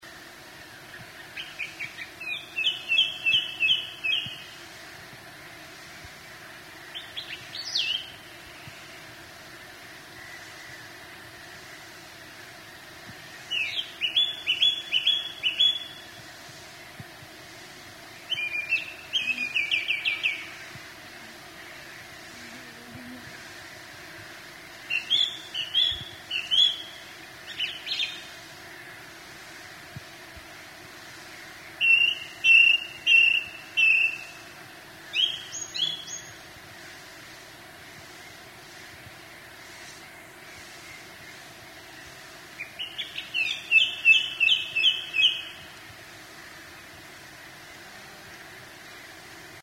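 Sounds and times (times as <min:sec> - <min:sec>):
song thrush singing: 0:00.8 - 0:04.6, 0:06.9 - 0:09.0, 0:13.3 - 0:16.2, 0:18.1 - 0:20.8, 0:24.8 - 0:28.4, 0:31.6 - 0:36.4, 0:40.0 - 0:45.8.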